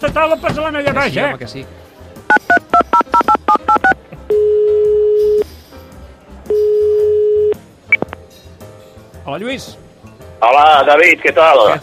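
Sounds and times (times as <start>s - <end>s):
speech: 0.0s - 1.9s, 9.3s - 9.8s, 10.4s - 11.8s
dual-tone DTMF keypad beeps of a phone number being dialed: 2.3s - 5.4s, 6.5s - 8.1s
long steady telephone ringback tones: 2.3s - 5.4s, 6.5s - 7.6s.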